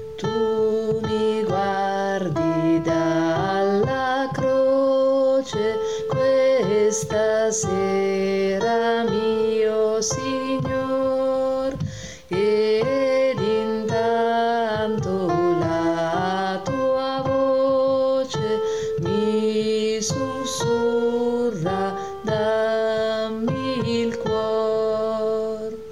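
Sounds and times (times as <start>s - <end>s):
tenors singing: 0.2s - 25.9s.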